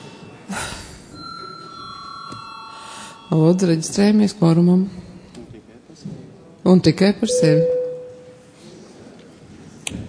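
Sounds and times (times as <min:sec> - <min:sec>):
session bell ringing in a parliament chamber: 0:01.1 - 0:04.2, 0:07.3 - 0:08.4
speech: 0:03.3 - 0:05.1, 0:06.7 - 0:07.8.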